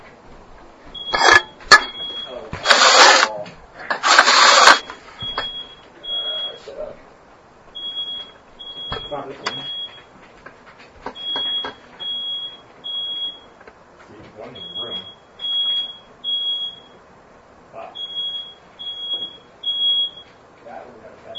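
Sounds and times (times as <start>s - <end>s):
smoke alarm beeping: 1.0s - 3.4s, 4.0s - 6.7s, 7.7s - 10.1s, 11.1s - 13.6s, 14.5s - 17.0s, 17.9s - 20.4s
people talking: 2.2s - 3.6s, 6.0s - 7.0s, 9.0s - 9.7s, 14.1s - 15.1s, 20.6s - 21.3s.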